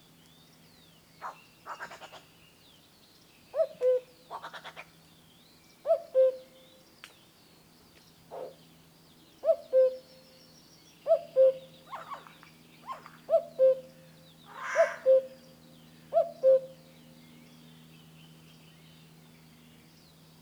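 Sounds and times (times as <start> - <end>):
common cuckoo Cuculus canorus calling: 5.9 - 6.4, 9.4 - 10.0, 11.1 - 13.9, 14.5 - 15.4, 16.1 - 16.8.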